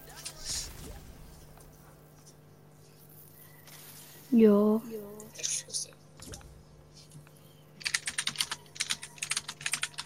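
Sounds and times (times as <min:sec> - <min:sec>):
speech: 0:04.3 - 0:05.0
PC gamer typing rapidly on a computer keyboard: 0:07.8 - 0:10.0.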